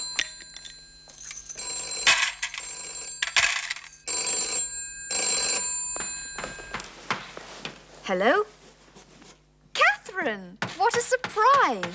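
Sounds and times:
telephone bell ringing: 0.0 - 7.6
speech: 8.1 - 8.6, 10.2 - 11.9.

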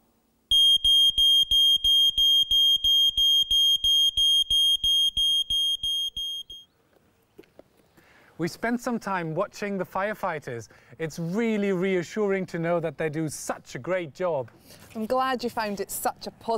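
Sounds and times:
smoke alarm beeping: 0.5 - 6.7
speech: 8.4 - 16.5.

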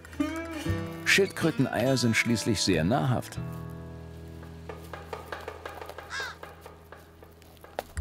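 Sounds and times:
speech: 0.6 - 3.7
hungry crow cawing at a roadside embankment: 5.9 - 6.6.

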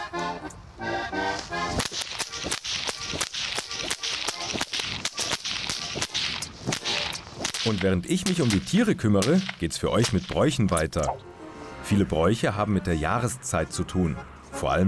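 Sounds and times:
whip cracking while driving cows into the barn: 1.7 - 11.2
speech: 7.6 - 11.3, 11.9 - 14.8.

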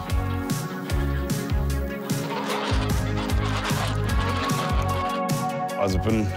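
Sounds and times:
laughter: 0.5 - 5.4
herded flock of geese honking: 2.0 - 5.2
speech: 5.9 - 6.3.

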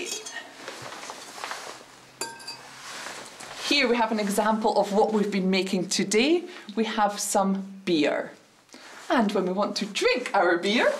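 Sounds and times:
quiet low noise: 0.0 - 10.9
soft handling sounds: 0.5 - 4.8
glass wine bottles of red and white wine clinking: 2.2 - 2.6
speech: 3.7 - 8.4, 9.1 - 10.9.

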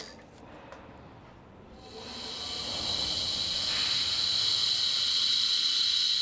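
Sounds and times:
vacuum pump creating low pressure over a small dish of water: 1.8 - 6.2.

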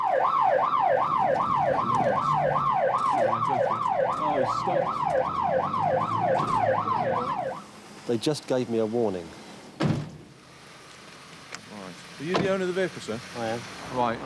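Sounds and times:
police car siren wailing: 0.0 - 7.7
low rumble of traffic: 0.0 - 14.2
speech: 8.1 - 9.4, 12.2 - 14.2.

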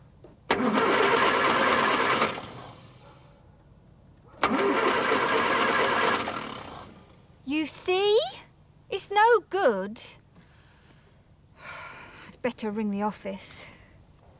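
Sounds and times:
car engine cranking without starting: 0.5 - 3.0, 4.4 - 7.1
speech: 9.4 - 10.2, 12.4 - 13.8.

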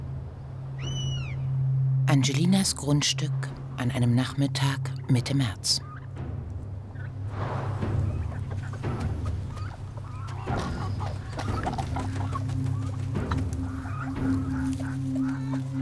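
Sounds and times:
constant low hum: 0.0 - 15.8
speech: 2.1 - 5.9
chickens clucking on a property: 3.5 - 15.8.

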